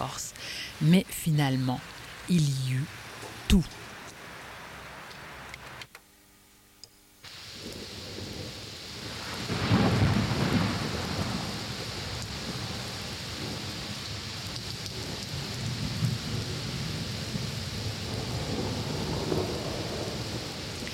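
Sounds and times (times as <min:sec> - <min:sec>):
speech: 0:00.0 - 0:03.8
steady dense rain pouring beside the Seine: 0:00.0 - 0:05.9, 0:07.2 - 0:20.9
deep thunder rumbling beside the Seine: 0:07.3 - 0:20.9.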